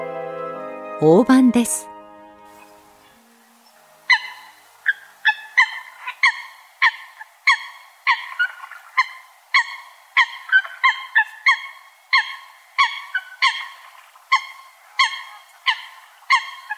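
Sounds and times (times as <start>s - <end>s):
speech: 1.0s - 1.9s
Eurasian coot calling with short nasal honks in a park in Tokyo, Japan: 2.5s - 16.7s
second fainter Eurasian coot calling: 4.0s - 16.7s.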